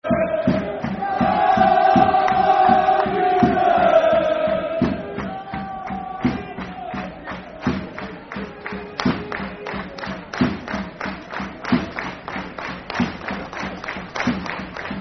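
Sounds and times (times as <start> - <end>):
football crowd chanting a soccer song: 0.0 - 11.8
drums: 0.0 - 15.0.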